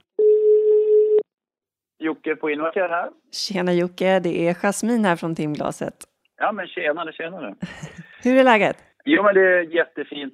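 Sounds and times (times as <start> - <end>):
ringback tone of an outgoing phone call: 0.2 - 1.2
speech: 2.0 - 10.3
laughter: 7.6 - 8.3.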